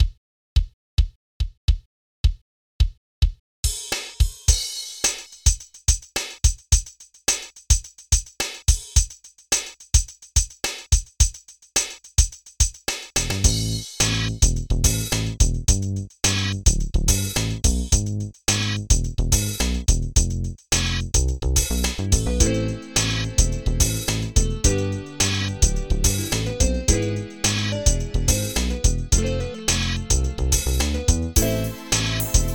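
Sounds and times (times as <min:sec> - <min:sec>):
drums: 0:01.7 - 0:32.5.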